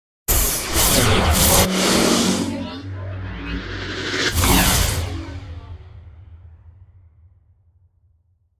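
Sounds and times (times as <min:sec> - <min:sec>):
meteor storm sound effect: 0:00.8 - 0:06.8.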